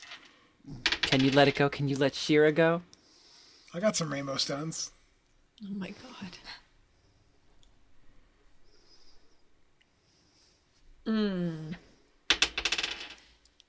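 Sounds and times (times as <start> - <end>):
dice clattering across a hard tabletop: 0.0 - 1.7, 12.3 - 13.4
speech: 0.7 - 2.9, 3.7 - 5.0, 5.6 - 6.6, 11.1 - 11.8
faint soft hissing: 2.9 - 11.1.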